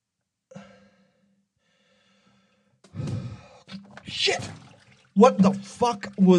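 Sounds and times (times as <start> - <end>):
long slow deep breaths: 0.5 - 3.7
sudden louder heavier burst of breath: 1.6 - 3.6
speech: 4.1 - 4.6, 5.2 - 6.3.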